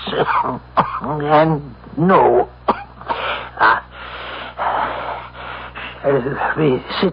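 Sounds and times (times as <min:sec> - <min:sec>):
man's harsh hacking consumptive cough: 0:00.0 - 0:01.2, 0:02.7 - 0:03.9
speech: 0:00.1 - 0:02.6, 0:06.0 - 0:07.1
man's long wheezing rasping breaths: 0:03.0 - 0:06.1.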